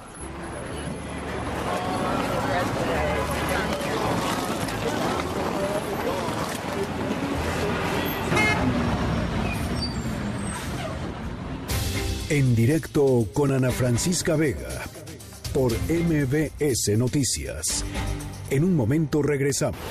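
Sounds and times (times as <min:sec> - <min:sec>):
faint voices of passersby: 0:00.0 - 0:09.8
steady roar of engines in New York City street traffic: 0:00.0 - 0:11.9
car horns honking in New York City street traffic: 0:07.9 - 0:10.8
speech: 0:12.3 - 0:14.9, 0:15.6 - 0:19.8.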